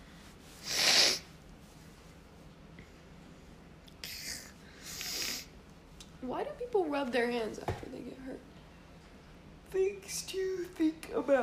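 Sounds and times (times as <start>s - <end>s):
stifled sneeze: 0.6s - 1.3s
speech: 6.2s - 8.5s, 9.7s - 11.4s.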